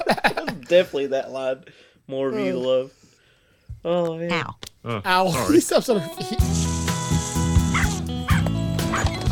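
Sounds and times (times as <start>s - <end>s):
speech: 0.1s - 3.0s, 3.8s - 6.7s
West Highland Terrier yapping: 7.8s - 9.2s.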